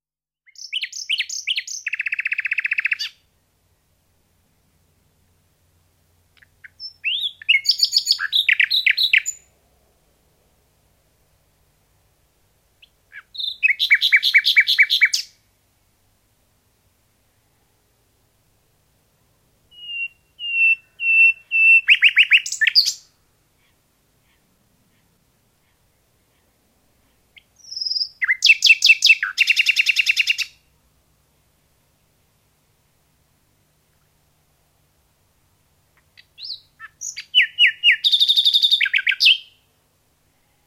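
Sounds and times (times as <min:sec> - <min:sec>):
nightingale singing: 0:00.4 - 0:03.3, 0:06.3 - 0:09.6, 0:12.8 - 0:15.4, 0:19.7 - 0:30.7, 0:35.9 - 0:39.7.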